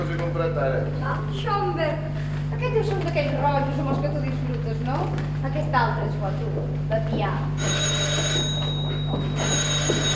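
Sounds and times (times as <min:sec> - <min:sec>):
steady low electrical hum: 0:00.0 - 0:10.1
speech: 0:00.4 - 0:09.7
telephone ringing with a rattling mechanical bell: 0:07.6 - 0:10.1.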